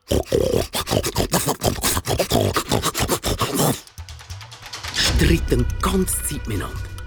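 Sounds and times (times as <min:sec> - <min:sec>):
human voice growling, grunting and snarling wordlessly: 0:00.0 - 0:03.9
speech: 0:05.3 - 0:06.9.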